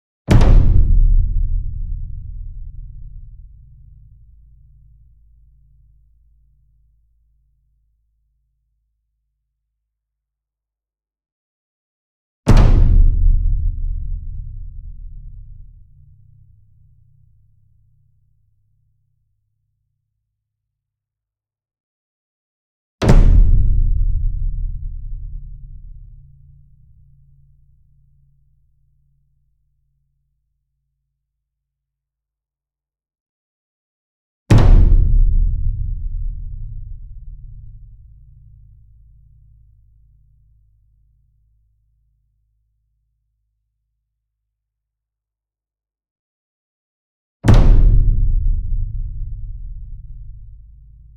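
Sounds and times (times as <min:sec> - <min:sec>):
concert bass drum flam: 0:00.3 - 0:03.7, 0:12.5 - 0:15.7, 0:23.0 - 0:26.1, 0:34.5 - 0:37.9, 0:47.4 - 0:50.8.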